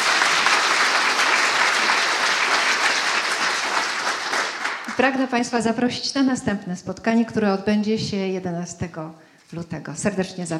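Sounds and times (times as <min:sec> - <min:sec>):
audience applauding: 0:00.0 - 0:05.1
speech: 0:05.0 - 0:10.5.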